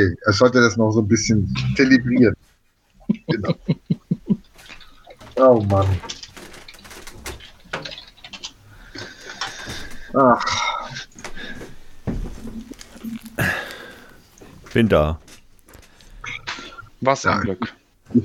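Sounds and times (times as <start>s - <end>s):
speech: 0.0s - 2.5s, 3.1s - 3.9s, 5.4s - 6.2s, 10.1s - 10.7s, 14.8s - 15.2s, 17.0s - 18.2s
laughter: 3.1s - 4.5s, 13.4s - 13.8s
aluminium foil hat rustling as it is put on: 6.0s - 8.6s, 11.1s - 16.8s.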